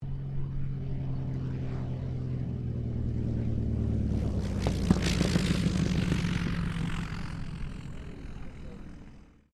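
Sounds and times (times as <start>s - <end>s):
Cessna 195 airplane landing: 0.0s - 9.5s.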